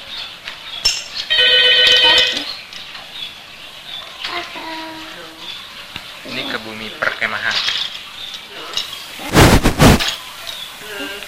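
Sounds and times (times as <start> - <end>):
faint noise: 0.0 - 11.2
telephone ringing with electronic trill: 1.3 - 2.4
speech: 6.7 - 7.9.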